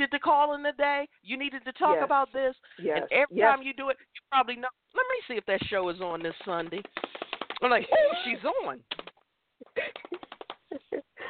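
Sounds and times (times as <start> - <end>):
speech: 0.0 - 9.1, 9.7 - 11.2
fingers typing on a computer keyboard: 6.6 - 7.6.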